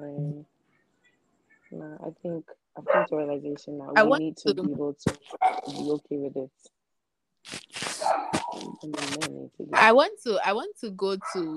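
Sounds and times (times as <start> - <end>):
speech: 2.0 - 6.8, 7.4 - 11.5
pregnant female dog barking and yelping: 2.8 - 3.1, 5.3 - 5.8, 8.0 - 8.6.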